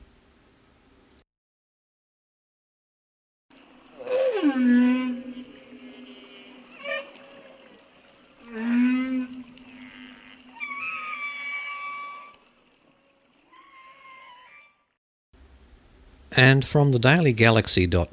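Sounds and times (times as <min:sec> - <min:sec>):
low drawn-out whale calls and moaning: 0:03.7 - 0:15.0
speech: 0:16.4 - 0:18.1.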